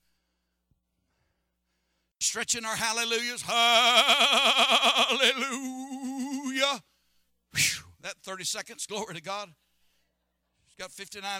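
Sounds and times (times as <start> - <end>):
speech: 2.2 - 5.7, 7.6 - 9.7, 10.8 - 11.3
human voice imitating a sheep bleat: 3.5 - 6.8.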